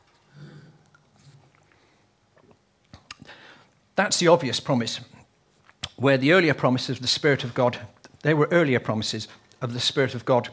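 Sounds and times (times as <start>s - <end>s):
speaker sipping water, slurping and swallowing: 0.1s - 3.4s
small mouth click: 2.4s - 3.3s, 5.6s - 6.0s
speech: 4.0s - 5.1s, 6.0s - 10.5s.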